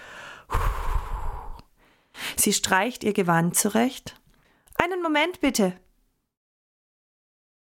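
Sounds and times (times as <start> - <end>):
deep breath with sigh-like exhale: 0.0 - 2.4
speech: 2.4 - 4.2, 5.0 - 5.8.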